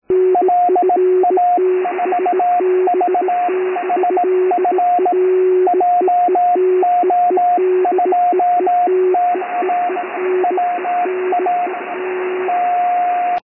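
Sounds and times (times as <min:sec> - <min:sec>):
VHF radio beacon signal: 0:00.1 - 0:13.4.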